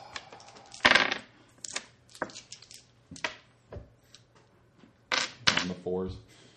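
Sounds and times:
dice clattering onto a hard tabletop: 0.4 - 3.5, 5.1 - 5.8
speech: 5.8 - 6.3.

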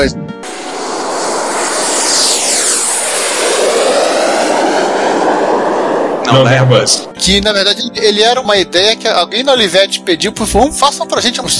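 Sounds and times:
speech: 0.0 - 0.3, 6.3 - 11.5
jet airplane engine roar with high whine as the aircraft passes: 0.4 - 7.3.

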